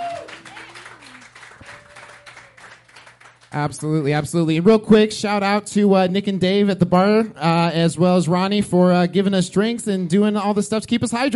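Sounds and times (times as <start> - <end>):
faint cheering voices: 0.0 - 2.6
audience applause at a live music and stand-up comedy show: 0.0 - 3.6
speech: 3.5 - 11.3.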